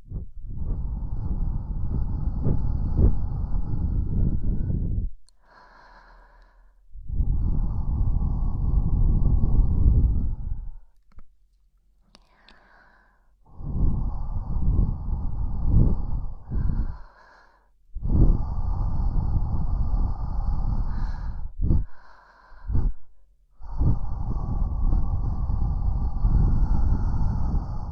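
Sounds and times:
soft wind gusts brushing past the ear: 0:00.0 - 0:05.2, 0:07.0 - 0:10.8, 0:13.5 - 0:17.0, 0:18.0 - 0:22.0, 0:23.8 - 0:27.9.

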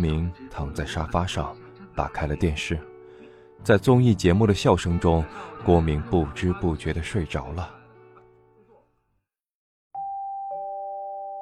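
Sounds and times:
speech: 0:00.0 - 0:02.9, 0:03.6 - 0:07.8
doorbell at a home's front door sounding a two-note ding-dong chime: 0:10.0 - 0:11.4.

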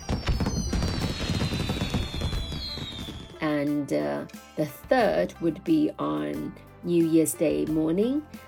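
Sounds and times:
firecrackers and fireworks popping: 0:00.0 - 0:03.4
speech: 0:03.6 - 0:08.4.

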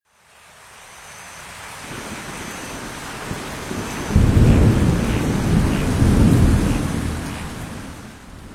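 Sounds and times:
rain: 0:00.0 - 0:08.5
wind: 0:00.0 - 0:08.5
deep rumbling roll of thunder: 0:01.9 - 0:08.5.

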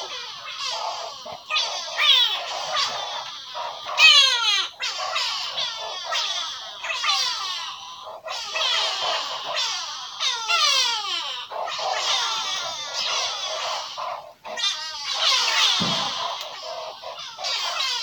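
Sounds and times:
dense overlapping bird chatter in bushveld in South Africa: 0:00.0 - 0:18.0
single low thump: 0:15.8 - 0:16.3.

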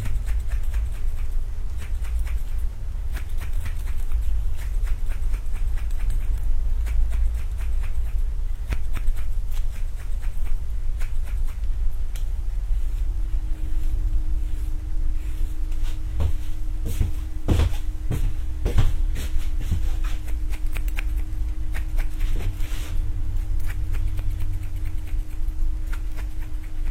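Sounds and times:
scissor snips during a haircut: 0:00.0 - 0:12.3, 0:20.2 - 0:22.6, 0:23.6 - 0:26.9
deep steady rumble: 0:00.0 - 0:26.9
faint humming tone: 0:00.0 - 0:26.9.

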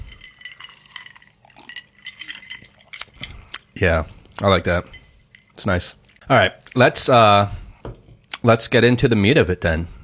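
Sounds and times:
glasses clinking together in a toast: 0:00.0 - 0:03.4, 0:04.5 - 0:05.6
speech: 0:03.8 - 0:05.0, 0:05.6 - 0:07.6, 0:08.4 - 0:10.0.

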